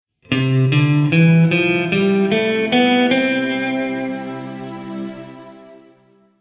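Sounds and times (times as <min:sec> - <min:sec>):
C major diatonic scale: 0:00.3 - 0:06.3.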